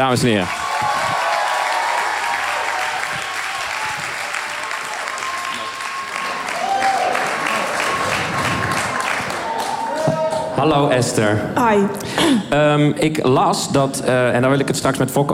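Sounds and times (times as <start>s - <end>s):
speech: 0.0s - 0.6s, 10.6s - 15.3s
large audience applauding: 0.0s - 10.6s
faint voices and cheers: 0.0s - 10.9s.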